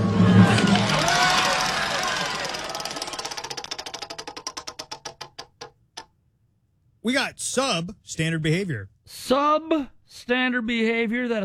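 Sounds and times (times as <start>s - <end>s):
prize wheel spinning with rapid clicking: 0.4s - 6.1s
speech: 7.0s - 11.4s.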